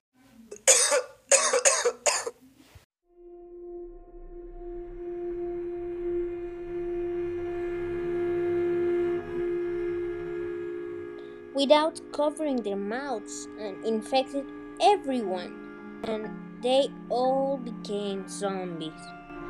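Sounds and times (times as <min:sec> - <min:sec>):
harsh loud coughs: 0:00.6 - 0:02.4
speech: 0:00.7 - 0:02.0, 0:11.6 - 0:19.2
steady low droning hum: 0:03.2 - 0:13.5.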